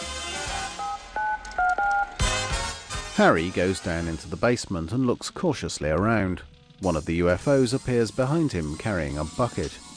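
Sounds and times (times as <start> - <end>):
cell phone keypad tones dialing a number in a stretch limo: 0.8 - 2.2
low rumbling noise: 3.2 - 8.0
speech: 3.2 - 9.8.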